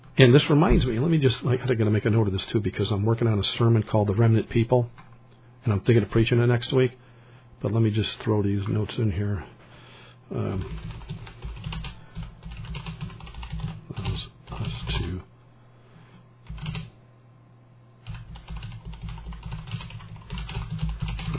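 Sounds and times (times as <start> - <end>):
speech: 0.2 - 5.0, 5.6 - 7.0, 7.6 - 9.6, 10.3 - 11.2
typing on a computer keyboard: 10.6 - 14.2, 16.5 - 16.9, 18.0 - 21.3.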